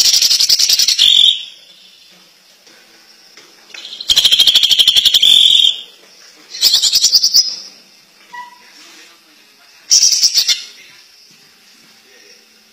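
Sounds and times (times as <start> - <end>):
greater green leafbird song: 0.0 - 2.1, 3.8 - 5.9, 6.6 - 7.7, 9.9 - 10.8.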